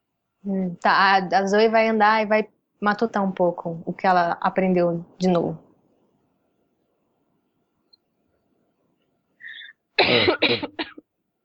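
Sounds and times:
speech: 0.4s - 5.6s, 10.0s - 11.0s
person's harsh coughing fit: 9.5s - 11.0s.

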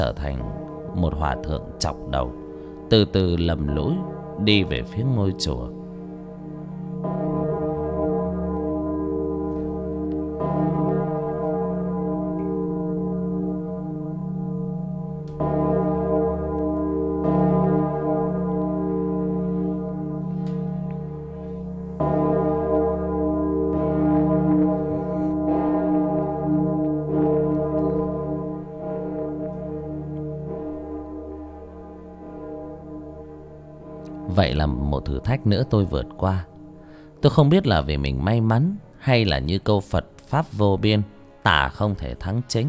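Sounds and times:
speech: 0.0s - 5.8s, 34.6s - 36.5s, 37.2s - 42.6s
Buddhist temple bell tolling: 0.0s - 42.6s.

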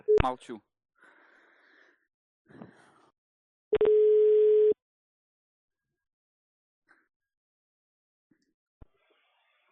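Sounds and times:
telephone busy tone on a busy line: 3.8s - 4.8s.

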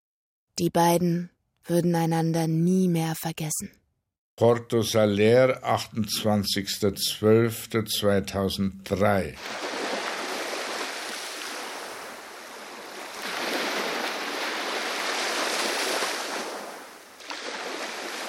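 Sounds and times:
speech: 0.6s - 3.8s, 4.4s - 9.8s
waves washing onto a beach: 9.4s - 18.2s.

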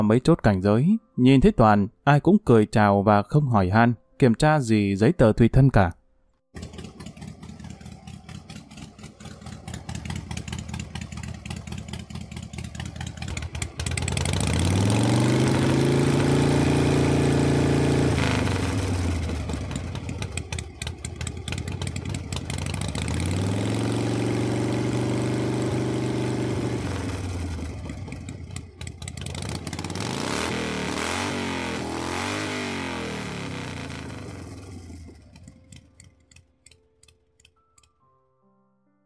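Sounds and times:
speech: 0.0s - 6.0s, 6.6s - 6.8s
rough rattling motorcycle engine idle: 6.6s - 15.0s, 18.9s - 23.9s, 26.5s - 30.1s, 34.3s - 36.4s
modified Yamaha Exciter motorcycles revving engines at a night street race: 6.6s - 35.8s.

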